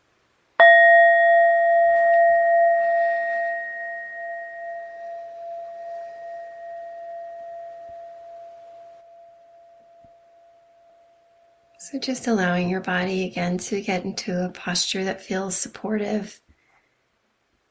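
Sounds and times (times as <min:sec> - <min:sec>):
bell struck and ringing: 0:00.6 - 0:11.4
speech: 0:11.9 - 0:16.4.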